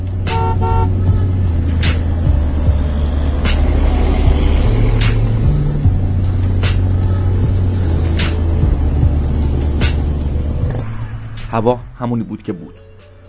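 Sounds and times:
car engines idling in a city traffic jam in Karaj: 0.0s - 13.2s
car horns honking in city traffic: 0.3s - 2.1s
speech: 11.6s - 12.9s.

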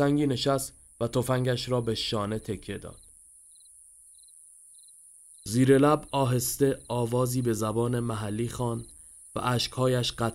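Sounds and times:
speech: 0.0s - 3.0s, 5.5s - 10.3s
crickets chirping at night: 0.0s - 10.3s
steady nighttime insect drone: 2.8s - 10.3s.

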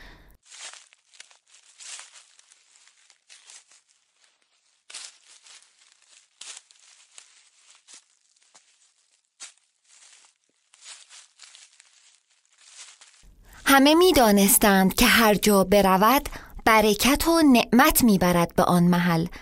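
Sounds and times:
footsteps crunching and rustling through dry autumn leaves: 0.4s - 13.6s
speech: 13.7s - 19.4s.

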